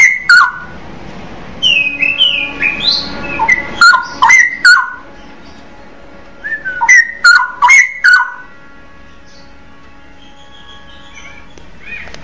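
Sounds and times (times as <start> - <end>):
Oriental magpie-robin song with clear whistled notes and sharp clicks: 0.0 - 0.8, 1.6 - 5.6, 6.4 - 8.5, 10.2 - 12.2.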